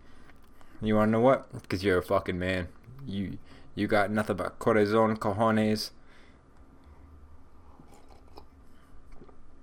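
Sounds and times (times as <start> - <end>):
speech: 0.8 - 6.0
person sipping a hot drink: 7.7 - 8.6.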